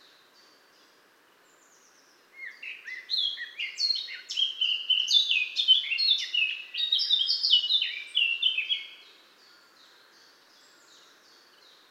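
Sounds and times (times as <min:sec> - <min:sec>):
Eurasian blackcap Sylvia atricapilla warbling song: 0:02.4 - 0:09.0.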